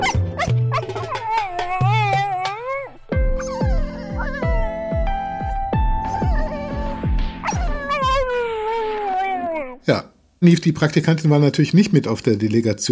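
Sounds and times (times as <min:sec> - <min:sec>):
steady thumping beat with sustained tones: 0:00.0 - 0:08.3
dog whining, whimpering and yelping: 0:00.0 - 0:09.8
speech: 0:09.9 - 0:12.9.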